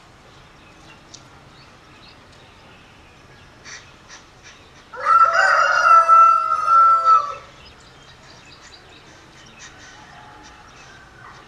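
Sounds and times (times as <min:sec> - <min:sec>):
rooster crowing at dawn in Yaoundé, Cameroon: 0:04.9 - 0:07.5, 0:09.7 - 0:11.4.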